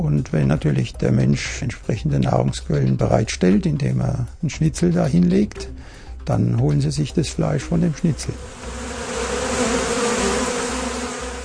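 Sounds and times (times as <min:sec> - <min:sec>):
speech: 0:00.0 - 0:08.8
wasps buzzing: 0:07.7 - 0:11.4.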